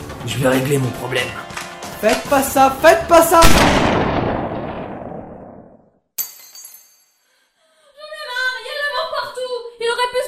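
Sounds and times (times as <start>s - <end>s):
speech: 0.2s - 4.0s
gunshot: 3.4s - 5.8s
sharp bright clink: 6.2s - 7.2s.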